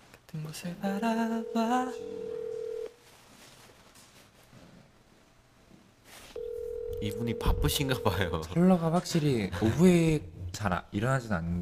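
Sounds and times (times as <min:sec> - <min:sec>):
speech: 0:00.4 - 0:02.3, 0:07.0 - 0:11.6
telephone ringback tone while connecting a call: 0:01.4 - 0:02.9, 0:06.4 - 0:08.6.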